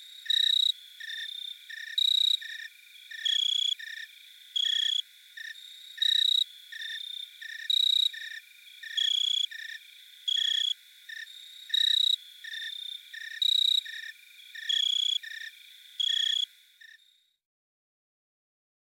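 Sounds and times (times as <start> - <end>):
jumping bush cricket Orocharis saltator chirping: 0.0 - 17.2.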